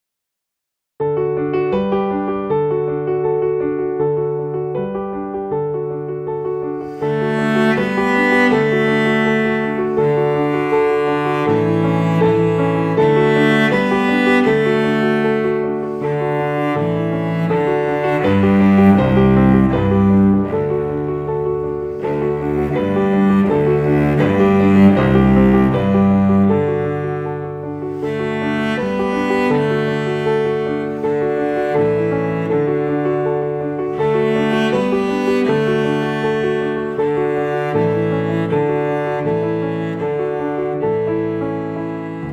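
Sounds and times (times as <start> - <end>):
piano: 1.0 - 42.3
cello: 2.0 - 42.3.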